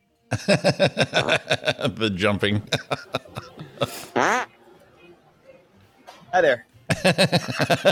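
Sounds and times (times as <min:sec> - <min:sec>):
laughter: 0:00.3 - 0:04.4, 0:06.9 - 0:07.9
speech: 0:00.3 - 0:04.5, 0:06.3 - 0:07.9
short loud fart: 0:04.1 - 0:04.5.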